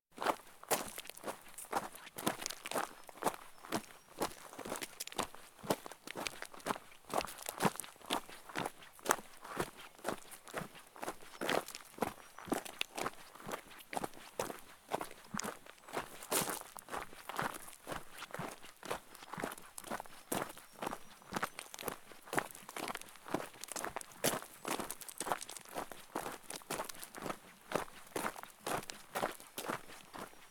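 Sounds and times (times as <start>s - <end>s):
man's footsteps walking on stones and gravel: 0.2s - 30.4s.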